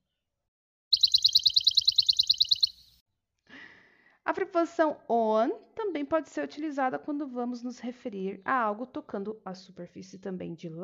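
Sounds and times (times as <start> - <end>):
bird chirping in a yard: 0.9 - 3.0
speech: 4.3 - 10.8.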